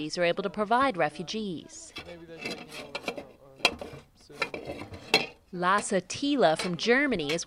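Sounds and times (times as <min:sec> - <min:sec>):
speech: 0:00.0 - 0:03.0, 0:05.5 - 0:07.4
large industrial-sized metal soup pots clanking and scraping together: 0:01.9 - 0:07.4.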